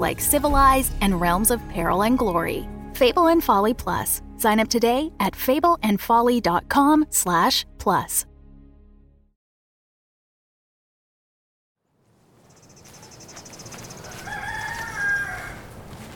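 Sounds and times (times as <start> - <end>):
speech: 0.0 - 8.3
insects chirring in a farmyard: 12.4 - 15.5
chickens fussing in a farmyard: 12.4 - 16.1
rooster crowing in a farmyard: 13.0 - 16.1.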